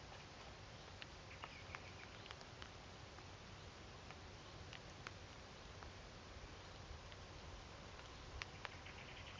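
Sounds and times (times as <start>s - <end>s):
steady hiss of outdoor noise: 0.0s - 9.3s
blackbird giving clicking call notes at dusk: 1.3s - 2.3s, 8.1s - 9.3s.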